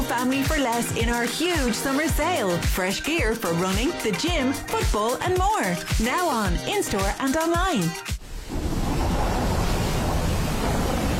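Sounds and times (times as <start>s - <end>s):
speech: 0.1s - 8.2s
winter wind sweeping across the Wicklow Mountains: 8.3s - 11.1s.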